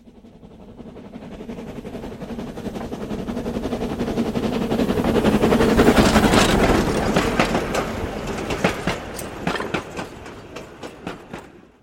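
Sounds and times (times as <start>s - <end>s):
big train rushing past at speed: 0.0s - 11.8s
train wheels clacking over rail joints: 4.5s - 11.8s.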